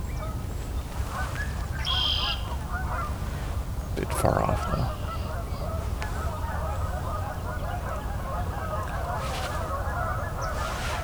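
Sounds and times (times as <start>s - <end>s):
flock of Canada geese honking: 1.0s - 11.0s
speech: 4.0s - 5.0s.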